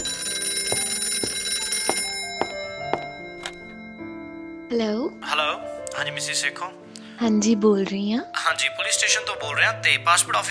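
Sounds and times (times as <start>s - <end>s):
phone ringing with bright electronic ringtone: 0.0s - 5.0s
speech: 4.7s - 10.4s.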